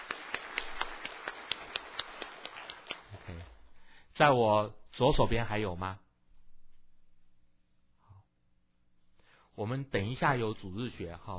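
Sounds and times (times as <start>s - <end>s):
sharp crisp claps: 0.0s - 3.4s
audience applauding to welcome a guest: 0.0s - 3.6s
speech: 4.2s - 6.0s, 9.6s - 11.3s.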